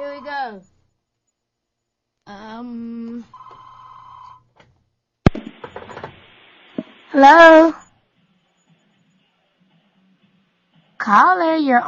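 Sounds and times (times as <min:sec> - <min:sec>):
speech: 0:00.2 - 0:00.8, 0:02.3 - 0:03.5, 0:07.1 - 0:07.8, 0:11.0 - 0:11.8
telephone ringing for an incoming call: 0:03.3 - 0:04.5
sharp loud burst of noise: 0:05.3 - 0:07.6.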